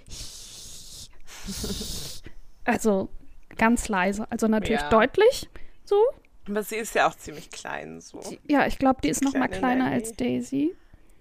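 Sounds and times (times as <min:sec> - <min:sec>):
person imitating a small cat's hiss: 0:00.0 - 0:02.4
speech: 0:01.5 - 0:10.8.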